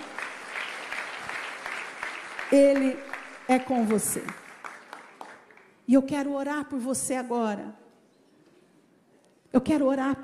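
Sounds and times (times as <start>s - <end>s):
congregation applauding: 0.0s - 5.8s
speech: 2.5s - 4.4s, 5.9s - 7.8s, 9.6s - 10.2s.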